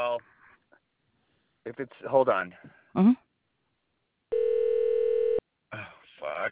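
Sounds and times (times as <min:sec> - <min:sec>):
speech: 0:01.7 - 0:03.2
telephone ringback tone on an unanswered call: 0:04.3 - 0:05.4.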